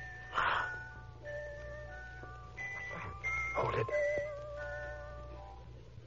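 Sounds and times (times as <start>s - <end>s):
jewel box playing a music-box melody: 0.0s - 5.7s
steady low hum: 0.0s - 6.0s.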